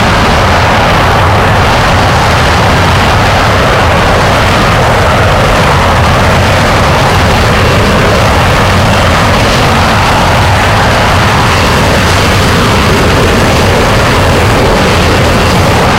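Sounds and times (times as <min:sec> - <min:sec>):
jet engine running: 0:00.0 - 0:15.9.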